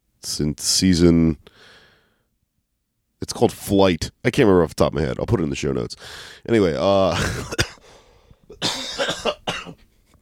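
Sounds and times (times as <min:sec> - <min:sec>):
speech: 0:00.4 - 0:01.8, 0:03.2 - 0:07.9, 0:08.6 - 0:08.8
person with whooping cough in a coughing fit: 0:07.1 - 0:07.9, 0:08.5 - 0:09.9.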